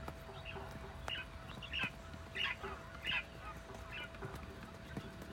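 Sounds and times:
quail calling in Orotina: 0.3s - 4.3s.

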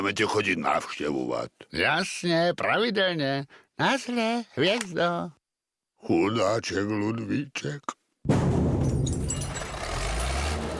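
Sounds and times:
speech: 0.0s - 5.4s, 6.0s - 8.4s
heavy garbage truck engine rumbling at a dump: 9.0s - 10.7s.

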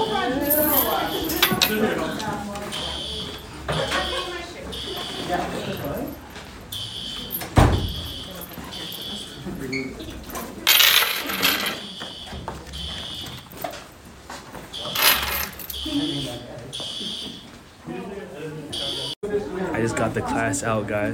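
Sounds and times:
fire alarm ringing during a class test: 0.0s - 9.5s, 10.7s - 13.7s, 14.7s - 17.5s, 18.7s - 19.2s
class voices chattering: 0.0s - 21.1s
speech: 20.0s - 21.1s.

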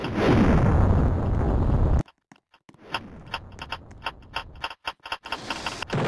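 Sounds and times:
video game explosion: 0.0s - 2.0s
sharp mechanical clicks in a video game: 2.0s - 6.0s.

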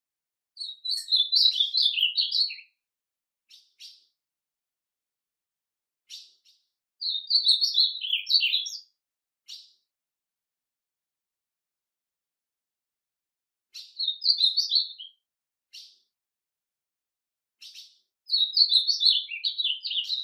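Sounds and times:
Ultramarine grosbeak warbled song phrases sliding downward: 0.6s - 2.8s, 3.5s - 4.1s, 6.1s - 9.8s, 13.7s - 16.1s, 17.6s - 20.2s.

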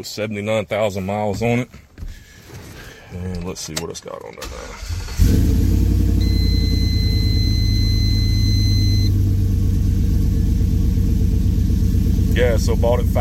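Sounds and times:
speech: 0.0s - 1.9s, 3.1s - 5.4s, 12.4s - 13.1s
truck engine with stage two cam idling: 4.9s - 13.1s.

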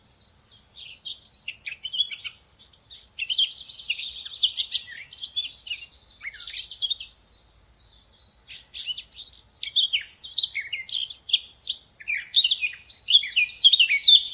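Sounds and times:
Eurasian blackcap singing: 0.1s - 14.3s.

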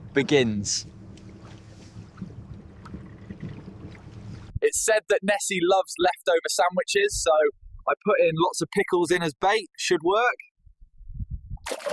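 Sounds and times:
water sloshing against a boat hull: 0.0s - 4.6s
boat engine low continuous hum: 0.0s - 4.9s
speech: 0.2s - 1.0s, 4.7s - 10.5s
wind noise buffeting the microphone: 0.9s - 4.6s, 10.6s - 11.7s.

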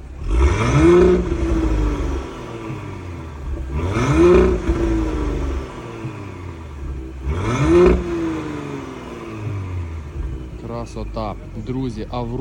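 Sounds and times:
car engine revving through a loud exhaust with exhaust valves opened: 0.0s - 12.3s
speech: 10.9s - 12.3s.

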